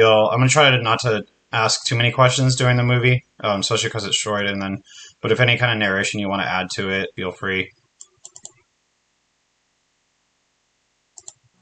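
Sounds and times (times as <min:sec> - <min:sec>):
speech: 0:00.0 - 0:07.8
typing on a computer keyboard: 0:08.0 - 0:08.6, 0:11.2 - 0:11.4.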